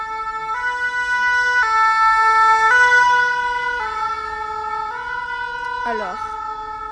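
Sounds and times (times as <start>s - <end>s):
fire engine two-tone siren passing by: 0.0s - 6.9s
speech: 5.9s - 6.3s.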